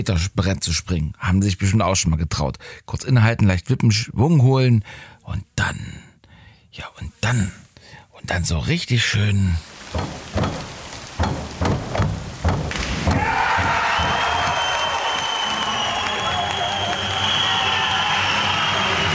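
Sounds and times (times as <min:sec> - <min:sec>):
speech: 0:00.0 - 0:06.0, 0:06.8 - 0:07.6, 0:08.2 - 0:10.6
rhythmic thuds: 0:09.7 - 0:14.7
spectators cheering and applauding at a swimming championship in a large indoor venue: 0:12.5 - 0:19.1.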